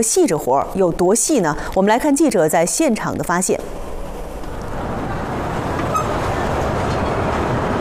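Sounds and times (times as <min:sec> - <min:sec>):
speech: 0:00.0 - 0:03.9
train passing at a railway station, heavy wheels rumbling on track: 0:00.0 - 0:07.7.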